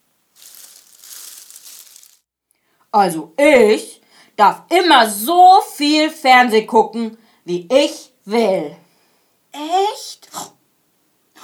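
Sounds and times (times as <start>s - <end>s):
rustling in the bushes next door: 0.0s - 2.3s
speech: 2.9s - 8.8s, 9.5s - 10.5s.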